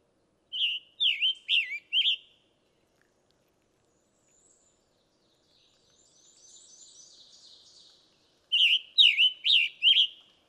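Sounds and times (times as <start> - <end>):
Scarlet Tanager raspy song in a forest: 0.5 - 2.3, 3.9 - 10.2.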